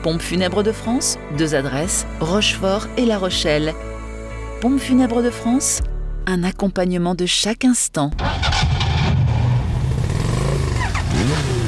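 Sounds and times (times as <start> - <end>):
speech: 0.0 - 4.0, 4.6 - 8.5
motor engine rumbling and revving: 8.2 - 11.6.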